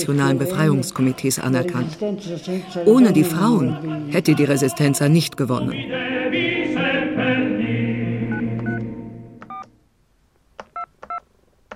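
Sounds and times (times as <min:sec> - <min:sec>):
speech: 0:00.0 - 0:06.1
fading music: 0:05.8 - 0:09.4
touch-tone DTMF beeps of a phone number being dialed: 0:08.3 - 0:08.8, 0:09.4 - 0:09.7, 0:10.8 - 0:11.2.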